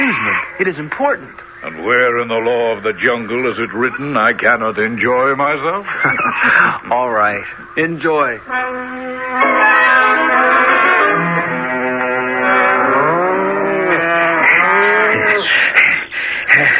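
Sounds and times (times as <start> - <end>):
laughter: 0.0 - 0.6, 5.8 - 6.9, 12.5 - 16.7
speech: 0.4 - 9.9
herd of cows and buffaloes lowing: 10.8 - 16.7.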